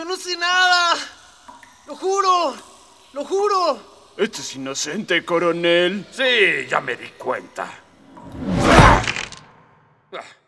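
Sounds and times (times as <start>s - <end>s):
speech: 0.1s - 1.2s, 1.9s - 8.5s, 10.1s - 10.4s
brutal metallic slap from a metal hand: 8.2s - 9.6s.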